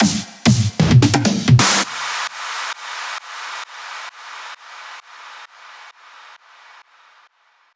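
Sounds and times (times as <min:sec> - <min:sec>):
EDM drum fill: 0:00.0 - 0:02.0.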